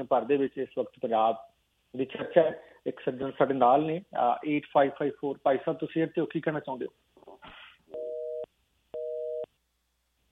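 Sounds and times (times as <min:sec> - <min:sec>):
speech: 0:00.0 - 0:07.6
telephone busy tone after a dropped phone line: 0:07.9 - 0:09.5.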